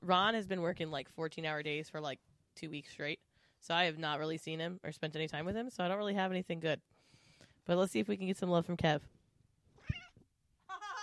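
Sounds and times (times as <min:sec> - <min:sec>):
speech: 0:00.1 - 0:06.9, 0:07.6 - 0:09.2
cat meowing: 0:09.8 - 0:11.0.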